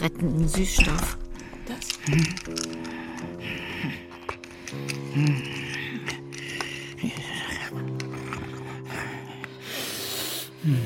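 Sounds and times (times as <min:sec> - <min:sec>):
speech: 0:00.0 - 0:04.0, 0:04.7 - 0:05.6
heavy snorting exhale through the nose: 0:02.2 - 0:10.8.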